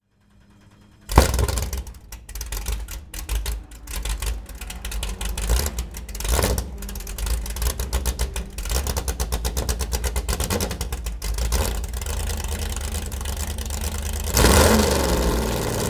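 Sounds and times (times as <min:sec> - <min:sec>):
1968 McLaren M6B race car engine starting: 0:00.0 - 0:15.8.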